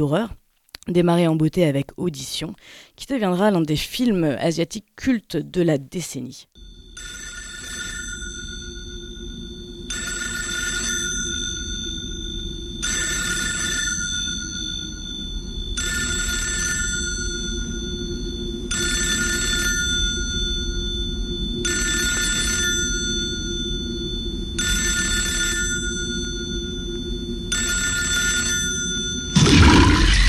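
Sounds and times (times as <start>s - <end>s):
speech: 0.0s - 7.2s
telephone bell ringing: 6.6s - 30.1s.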